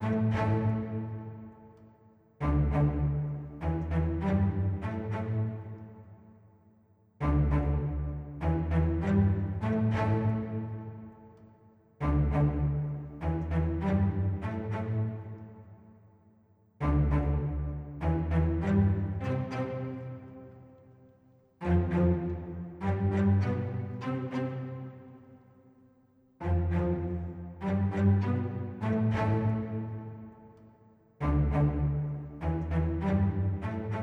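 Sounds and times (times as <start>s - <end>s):
light staccato cellos at 100 bpm: 0.0s - 6.2s, 7.2s - 11.4s, 12.0s - 15.8s, 16.8s - 20.7s, 21.6s - 25.3s, 26.4s - 34.0s.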